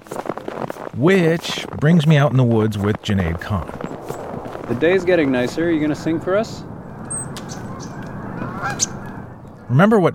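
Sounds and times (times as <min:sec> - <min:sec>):
steady low outdoor rumble: 0:00.9 - 0:10.1
speech: 0:01.0 - 0:03.8, 0:04.7 - 0:06.7, 0:09.7 - 0:10.1
nuthatch on a person's hand in the woods calling: 0:06.9 - 0:09.7.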